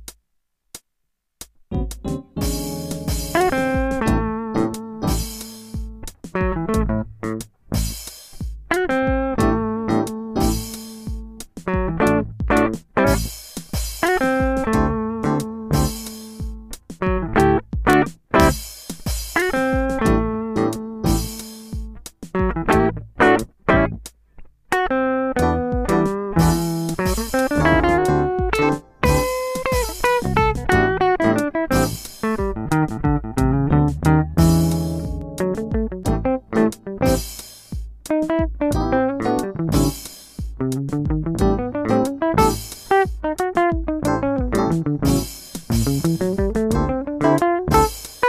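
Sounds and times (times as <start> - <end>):
funky blues music: 1.7 - 24.1, 24.7 - 48.2.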